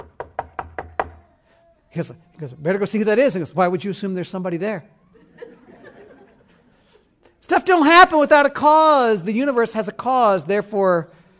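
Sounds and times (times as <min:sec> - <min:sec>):
knocks on a hard surface imitating a knock on a door: 0:00.0 - 0:01.2
speech: 0:01.9 - 0:05.0, 0:07.6 - 0:11.2
laughter: 0:05.1 - 0:07.0.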